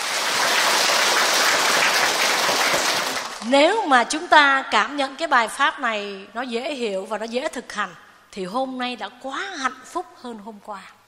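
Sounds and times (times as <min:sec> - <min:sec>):
crowd clapping steadily: 0:00.0 - 0:03.4
speech: 0:03.5 - 0:11.0.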